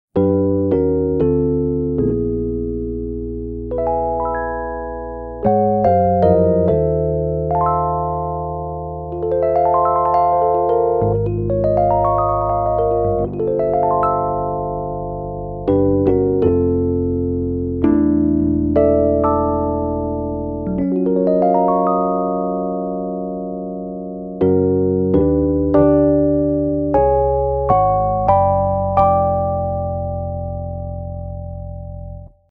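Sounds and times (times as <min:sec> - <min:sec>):
electric piano: 0:00.2 - 0:32.5.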